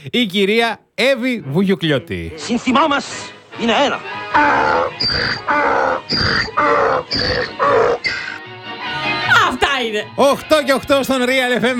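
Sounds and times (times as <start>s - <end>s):
speech: 0.0s - 8.2s, 9.5s - 11.7s
donkey braying: 3.9s - 8.5s.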